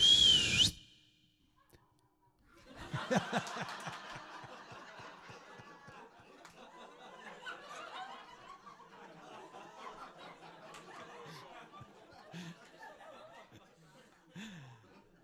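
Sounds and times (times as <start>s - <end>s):
person whistling: 0.0s - 1.1s
crowd laughing and chuckling: 2.6s - 15.2s.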